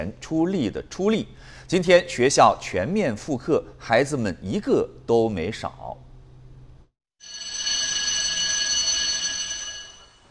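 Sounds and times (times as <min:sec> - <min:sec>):
speech: 0:00.0 - 0:06.0
school class bell ringing: 0:07.2 - 0:10.2.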